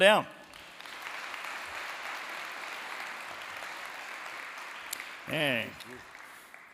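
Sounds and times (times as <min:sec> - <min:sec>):
speech: 0:00.0 - 0:00.4, 0:05.3 - 0:06.1
audience applause welcoming a guest: 0:00.4 - 0:06.7.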